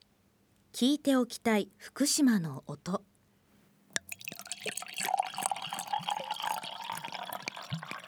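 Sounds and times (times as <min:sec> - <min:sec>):
speech: 0:00.7 - 0:03.1
sake glugging out of a bottle as it is poured: 0:04.0 - 0:08.0.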